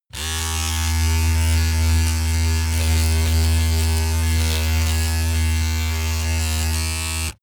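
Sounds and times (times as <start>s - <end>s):
electric razor running under load: 0.1s - 7.4s.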